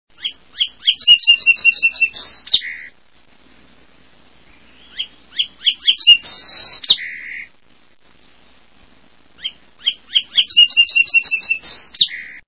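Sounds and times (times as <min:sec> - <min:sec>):
song sparrow singing: 0:00.1 - 0:03.0, 0:04.4 - 0:07.5, 0:09.4 - 0:12.4.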